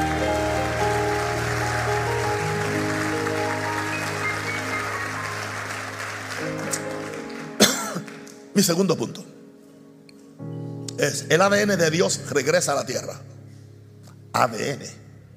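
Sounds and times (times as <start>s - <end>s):
audience applauding loudly: 0.0s - 8.7s
sustained keyboard chords: 0.0s - 15.3s
sharp cough: 7.6s - 8.1s
speech: 8.6s - 9.3s, 11.1s - 13.3s, 14.4s - 15.0s.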